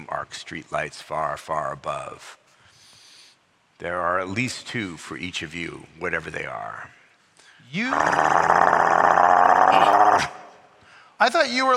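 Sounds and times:
speech: 0:00.2 - 0:02.4, 0:03.8 - 0:07.0, 0:07.7 - 0:10.4, 0:11.2 - 0:11.7
coyotes growling: 0:07.9 - 0:10.5.

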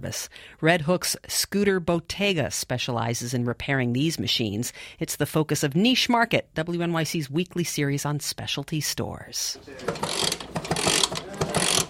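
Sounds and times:
speech: 0:00.0 - 0:10.4
ratchet clicks of a lift being cranked up to raise a vintage European scooter: 0:09.6 - 0:11.8.

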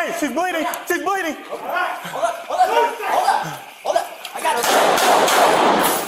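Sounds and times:
speech: 0:00.1 - 0:03.6
people chuckling: 0:01.9 - 0:04.2
gunshots being fired: 0:04.5 - 0:06.0.

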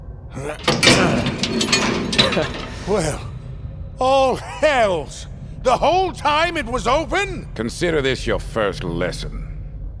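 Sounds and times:
speech: 0:00.4 - 0:00.8, 0:02.4 - 0:03.3, 0:04.0 - 0:09.4
door being pushed open with a grinding rumble: 0:00.6 - 0:03.7.

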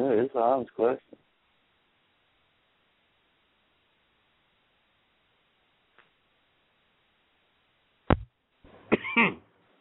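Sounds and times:
speech: 0:00.2 - 0:01.2, 0:09.2 - 0:09.4
person coughing: 0:08.9 - 0:09.4.

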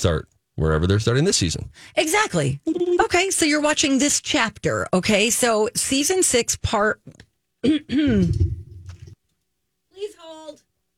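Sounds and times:
speech: 0:00.0 - 0:08.6
person clearing throat, suppressing a cough: 0:07.6 - 0:09.1.

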